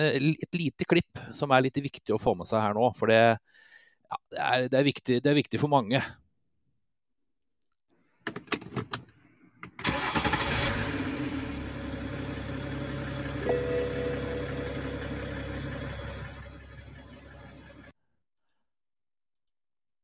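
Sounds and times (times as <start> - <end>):
speech: 0.0 - 6.2
BMW car engine starting: 9.6 - 17.9.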